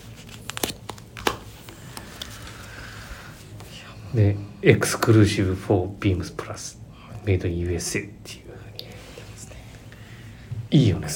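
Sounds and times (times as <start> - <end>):
paper tag supplied with a garment crinkling and rustling: 0.0 - 2.6
speech: 4.1 - 8.4, 10.7 - 11.1.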